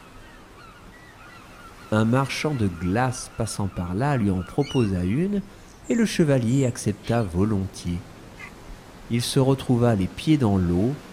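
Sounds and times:
seagulls calling at a calm beach: 0.0s - 6.1s, 8.3s - 8.7s
waves washing on a calm beach: 0.0s - 11.1s
speech: 1.9s - 8.1s, 9.1s - 11.1s.

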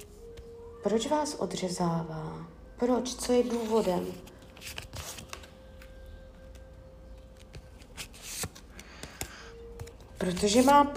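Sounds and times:
speech: 0.8s - 4.8s, 10.2s - 10.9s
deck of cards being shuffled: 3.4s - 10.9s.

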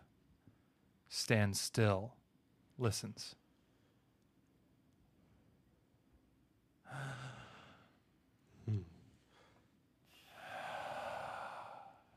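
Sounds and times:
speech: 1.2s - 2.2s, 2.8s - 3.4s, 6.9s - 7.4s
long heavy exhale: 9.3s - 12.1s
sharp gasping intake of breath: 9.3s - 12.1s.

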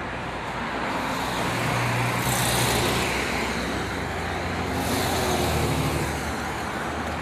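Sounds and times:
cars passing with tire hiss: 0.0s - 7.2s
steady roadway noise with broadband rumble: 0.0s - 7.2s.

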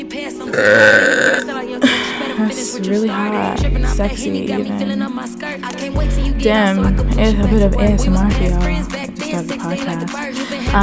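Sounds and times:
speech: 0.1s - 10.8s
long drawn-out burp: 0.5s - 2.2s.

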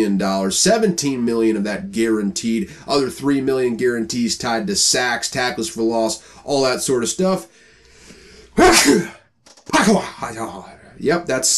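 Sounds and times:
speech: 0.0s - 7.6s, 8.6s - 9.1s, 9.8s - 11.5s
person sneezing: 8.6s - 9.2s.

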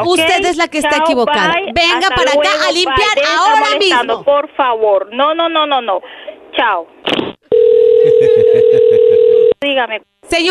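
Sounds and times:
speech: 0.0s - 7.2s, 9.6s - 10.4s
telephone dial tone after hang-up: 7.5s - 9.6s
laughter: 8.1s - 8.9s.

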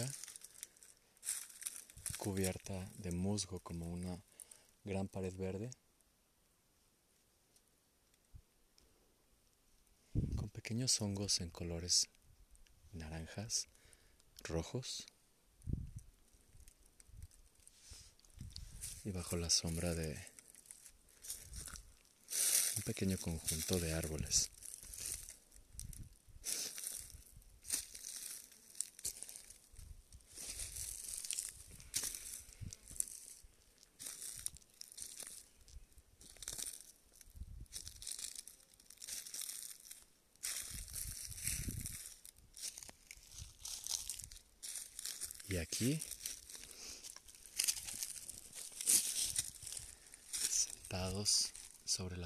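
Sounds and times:
dry leaves crunching and crumpling: 0.0s - 3.1s, 16.5s - 52.0s
speech: 2.2s - 5.8s, 10.7s - 12.2s, 12.9s - 13.8s, 14.4s - 15.8s, 19.0s - 20.3s, 22.8s - 24.6s.

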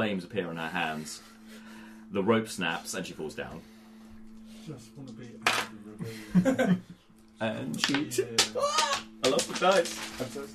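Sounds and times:
speech: 0.0s - 1.4s, 2.1s - 3.7s, 4.7s - 10.5s
laughter: 6.0s - 7.0s
dice dropping and clattering across a hard surface: 7.8s - 10.4s.

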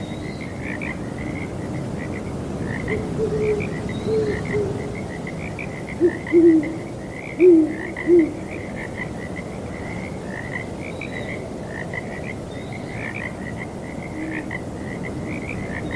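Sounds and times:
chorus of frogs trilling: 0.0s - 15.9s
low owl hoots: 2.9s - 4.9s, 6.0s - 6.8s, 7.4s - 8.4s, 14.2s - 14.5s.

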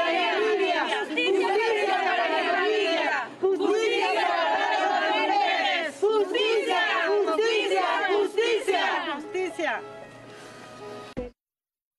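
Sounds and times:
large crowd chanting a cry for justice: 0.0s - 9.2s.

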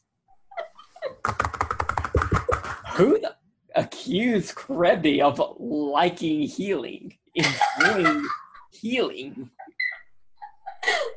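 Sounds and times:
furious clacking of a computer keyboard: 1.2s - 2.8s
speech: 1.3s - 1.6s, 3.0s - 9.6s
laughter: 7.4s - 8.6s, 9.3s - 11.1s.

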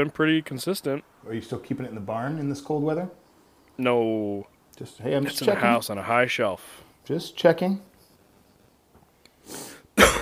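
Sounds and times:
speech: 0.0s - 3.2s, 3.8s - 7.9s
sharp breath drawn in: 9.4s - 9.9s
harsh cough into a microphone: 10.0s - 10.2s.

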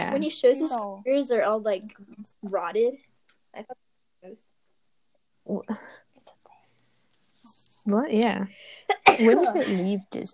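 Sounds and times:
speech: 0.1s - 4.5s, 5.5s - 6.0s, 7.8s - 10.3s
sneeze: 8.9s - 9.4s.

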